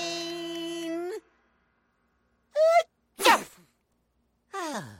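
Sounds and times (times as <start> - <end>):
person sneezing: 2.6 - 3.7.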